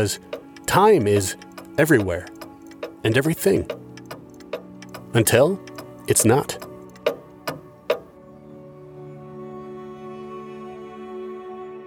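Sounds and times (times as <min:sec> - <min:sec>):
speech: 0:00.0 - 0:02.4, 0:03.0 - 0:03.8, 0:05.2 - 0:06.6
hand-carved wooden clocks ticking: 0:00.0 - 0:08.2.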